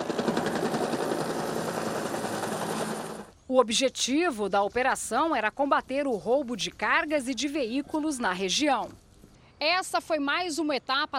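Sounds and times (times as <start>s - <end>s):
helicopter flying overhead with thumping rotor and engine roar: 0.0s - 3.4s
speech: 3.5s - 9.0s, 9.6s - 11.1s.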